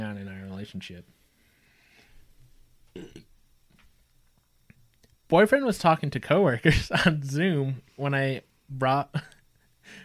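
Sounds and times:
faint breathy hiss: 0:00.3 - 0:03.2, 0:06.6 - 0:10.0
speech: 0:00.6 - 0:01.2, 0:05.3 - 0:09.3
person burping: 0:02.9 - 0:03.3.

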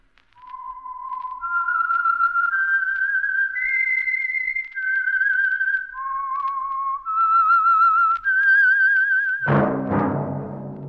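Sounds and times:
solo whistled theme tune: 0:00.4 - 0:10.8
loud orchestral chord: 0:09.5 - 0:10.8.

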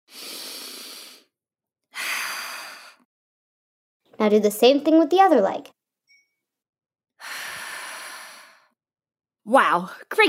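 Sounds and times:
deep breathing during a yoga tree pose: 0:00.1 - 0:03.1, 0:07.2 - 0:08.8
speech: 0:04.2 - 0:05.8, 0:09.5 - 0:10.2.

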